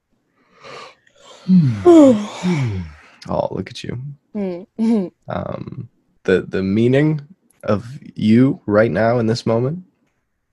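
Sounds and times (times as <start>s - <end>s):
person yawning: 0.7s - 3.1s
speech: 1.5s - 9.9s.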